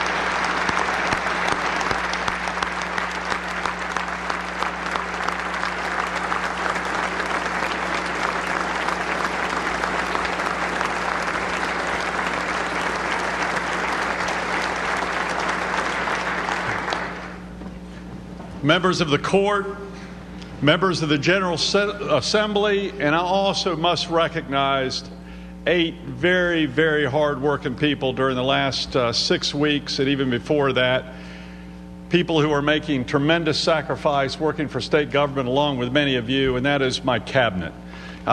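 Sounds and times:
large audience applauding in a big room: 0.0 - 17.5
speech: 18.7 - 20.0, 20.6 - 31.2, 32.1 - 38.3.

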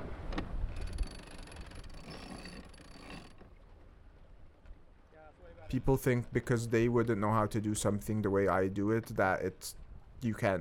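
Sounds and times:
jib flapping: 0.0 - 7.6
water noise: 0.0 - 10.5
wind: 0.0 - 10.5
winch on a heeling sailboat ratcheting as the jib is sheeted in: 0.7 - 3.5
speech: 5.7 - 10.5.

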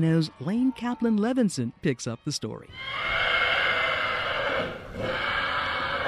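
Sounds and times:
speech: 0.0 - 3.4
horse in a stall blowing and snorting: 3.1 - 6.0.

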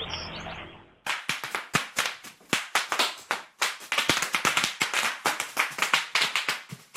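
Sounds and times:
bubble wrap popping under a running 7-year-old boy: 1.1 - 6.9.

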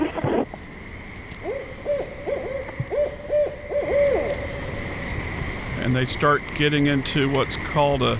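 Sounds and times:
steady hum: 0.0 - 8.1
barred owl hooting in a rapid series: 1.3 - 5.1
speech: 6.0 - 8.1.

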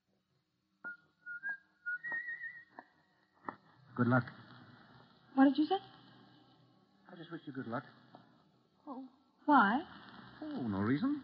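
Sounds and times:
man whistling a short wavering tune: 0.8 - 2.8
speech: 4.0 - 4.4, 5.4 - 6.0, 7.1 - 8.0, 8.9 - 11.2.

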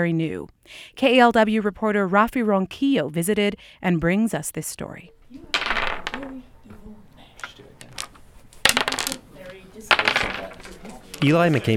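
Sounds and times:
speech: 0.0 - 5.6, 11.2 - 11.7
dice clattering and rattling across a hard tabletop: 5.5 - 6.4, 7.4 - 11.4.

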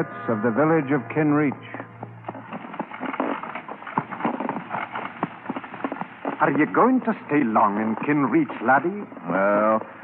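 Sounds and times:
speech: 0.0 - 2.0, 6.4 - 10.0
donkey cart wheels rumbling: 1.2 - 10.0
donkey hooves clip-clopping: 1.4 - 10.0.

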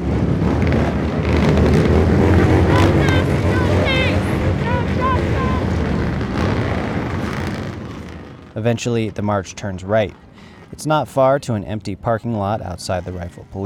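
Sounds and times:
motorcycle engines revving with throttles wide open: 0.0 - 11.8
street protesters chanting: 2.0 - 6.2
speech: 8.7 - 13.6.

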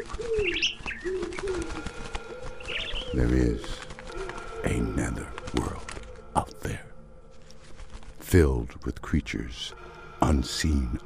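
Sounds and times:
pigeons cooing: 0.0 - 6.6
speech: 8.4 - 11.0.

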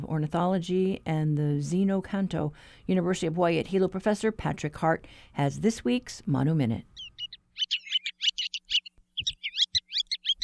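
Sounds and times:
speech: 0.1 - 7.0
Ruddy Turnstone rattling calls: 7.0 - 10.4.

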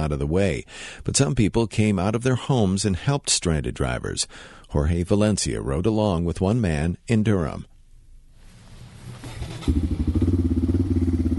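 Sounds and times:
speech: 0.0 - 7.7, 9.6 - 10.0
four-wheeler engine ridden through snow on a plowed suburban road: 9.2 - 11.3.

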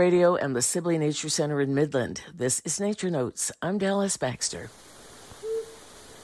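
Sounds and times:
speech: 0.0 - 5.0
quiet hiss: 4.1 - 6.2
Flammulated owl soft hooting: 5.3 - 6.2.

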